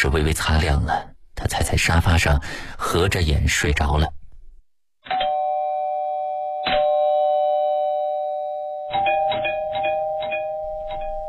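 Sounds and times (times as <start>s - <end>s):
speech: 0.0s - 4.2s
doorbell ringing with loud electronic chime tones: 5.1s - 11.2s.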